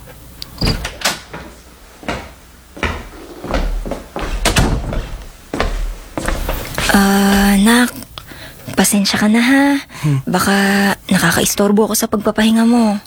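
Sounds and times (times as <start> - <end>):
wooden door clunking, knocking and rattling as it is opened: 0.6 - 1.4, 2.8 - 7.7
speech: 8.8 - 13.0.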